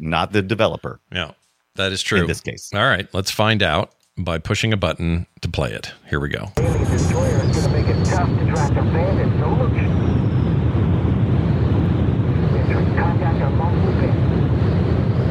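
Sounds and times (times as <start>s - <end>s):
speech: 0.0s - 9.9s
video game jet plane roar: 6.6s - 15.2s.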